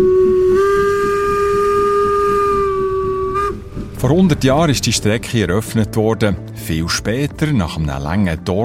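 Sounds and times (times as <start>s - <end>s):
steam locomotive whistle on the Furka mountain railway in Switzerland: 0.0s - 4.1s
low rumbling hiss: 0.0s - 7.6s
speech: 4.0s - 8.6s.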